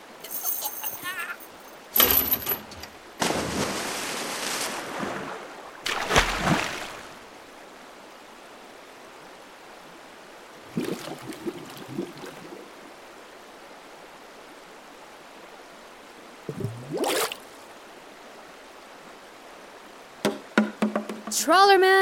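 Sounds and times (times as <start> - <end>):
steady hiss: 0.0 - 22.0
drain cleaner gurgling as poured into a man's mouth: 10.7 - 12.5, 16.5 - 17.5
speech: 21.4 - 22.0.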